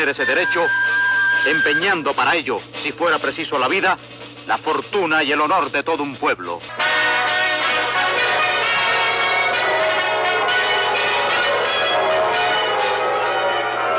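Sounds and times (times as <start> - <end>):
loud bronze bell ringing joyfully: 0.0 - 2.0, 6.8 - 13.9
speech: 0.0 - 6.8.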